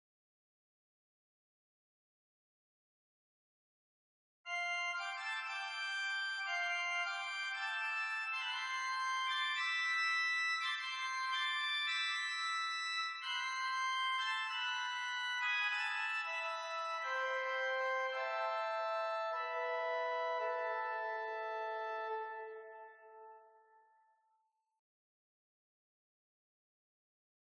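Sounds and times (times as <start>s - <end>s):
organ playing a mixture stop: 4.5s - 23.8s.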